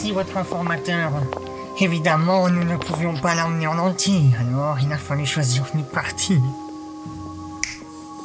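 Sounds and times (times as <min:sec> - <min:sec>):
speech: 0:00.0 - 0:06.6
finger snap: 0:07.6 - 0:07.9.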